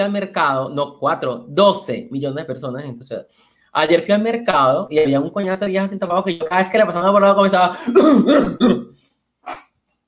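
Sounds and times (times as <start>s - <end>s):
speech: 0.0s - 9.6s
person coughing deliberately with throaty forced coughs: 7.7s - 9.6s.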